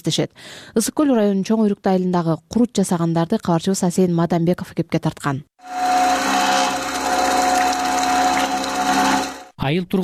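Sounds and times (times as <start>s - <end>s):
speech: 0.0s - 5.9s, 9.6s - 10.0s
milk cream separator running on fresh cow's milk in a village home near Lake Issyk-Kul, Kyrgyzstan: 5.6s - 9.5s.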